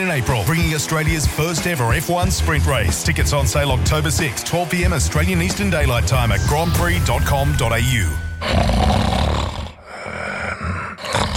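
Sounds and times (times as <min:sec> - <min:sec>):
speech: 0:00.0 - 0:09.0
person snoring: 0:08.4 - 0:11.3
raspy snort-like breath: 0:08.9 - 0:11.3.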